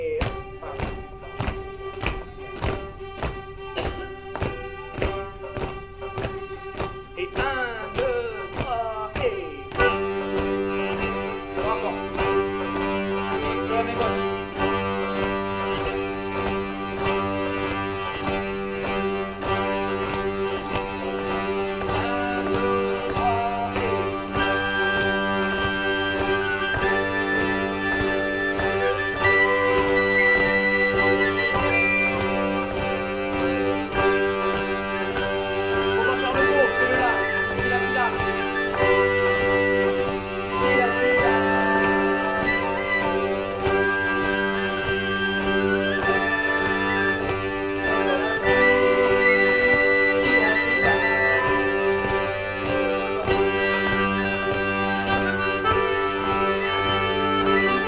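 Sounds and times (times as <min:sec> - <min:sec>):
diatonic accordion drone in G: 0:00.0 - 0:57.8
flutes: 0:00.0 - 0:57.8
violins: 0:00.0 - 0:57.8.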